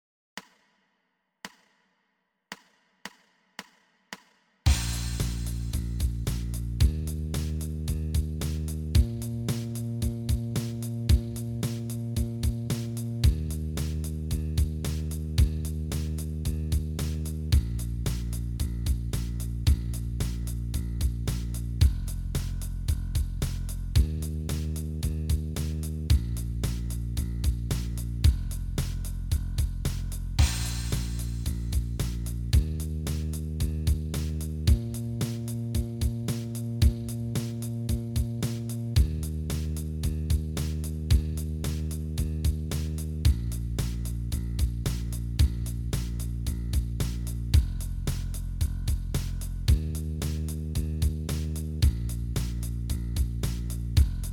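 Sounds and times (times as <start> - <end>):
blues bass startup: 4.7 - 54.3.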